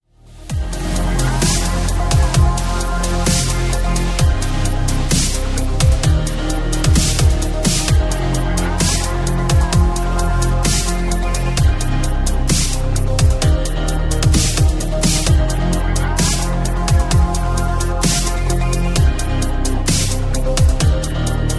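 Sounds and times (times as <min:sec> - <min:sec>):
lounge music: 0:00.2 - 0:21.5.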